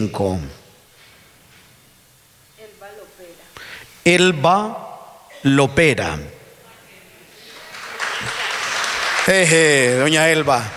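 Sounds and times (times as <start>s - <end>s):
speech: 0.0s - 0.6s, 4.0s - 4.8s, 5.4s - 6.4s, 9.2s - 10.7s
audience applause: 7.5s - 10.7s.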